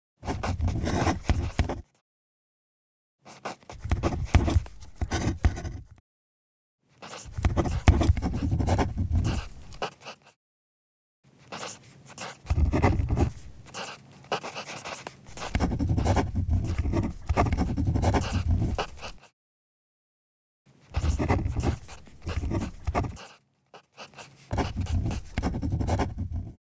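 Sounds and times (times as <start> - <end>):
pen handwriting on paper: 0.2 - 1.9, 3.3 - 6.0, 7.0 - 10.4, 11.5 - 19.3, 20.9 - 26.6.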